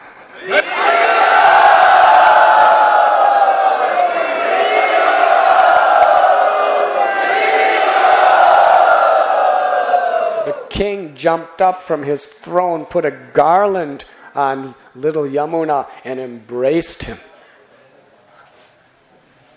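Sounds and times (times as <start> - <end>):
large crowd cheering and applauding: 0.3 - 10.7
speech: 0.4 - 1.0, 10.8 - 17.3.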